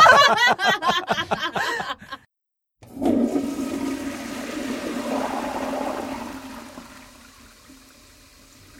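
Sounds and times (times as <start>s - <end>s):
person chuckling: 0.0s - 2.2s
toilet flushing: 2.8s - 8.7s.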